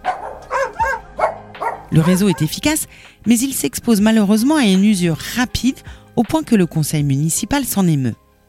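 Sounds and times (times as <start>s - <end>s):
dog barking: 0.0s - 2.6s
speech: 1.9s - 8.2s.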